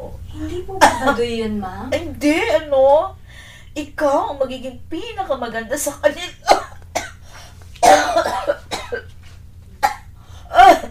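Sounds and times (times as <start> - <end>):
speech: 0.4 - 6.6
harsh wet coughing fit: 6.2 - 9.1, 9.8 - 10.8.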